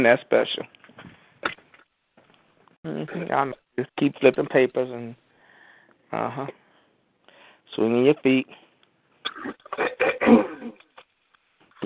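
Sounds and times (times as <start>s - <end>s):
speech: 0.0s - 0.8s, 2.8s - 5.2s, 6.1s - 6.6s, 7.7s - 8.6s, 9.2s - 10.8s
person clearing throat: 9.3s - 10.8s.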